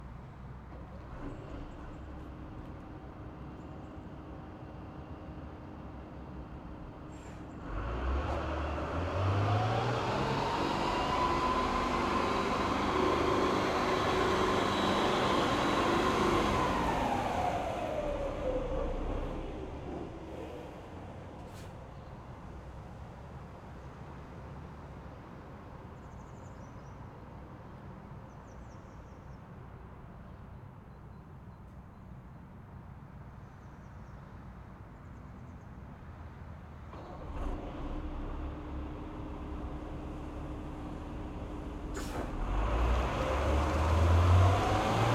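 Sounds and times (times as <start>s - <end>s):
distant Renault VAB armoured personnel carrier driving fast forward and reverse outdoors: 0.6s - 22.8s, 36.7s - 45.1s.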